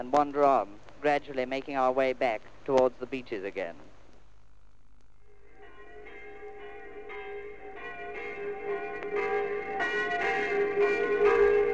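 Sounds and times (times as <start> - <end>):
speech: 0.0 - 3.9
church bells ringing in overlapping peals: 5.4 - 11.7.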